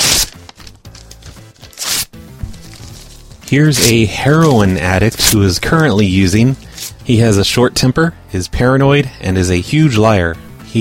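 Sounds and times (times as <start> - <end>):
paper tearing as a letter is ripped up: 0.0 - 5.9
speech: 3.5 - 10.7.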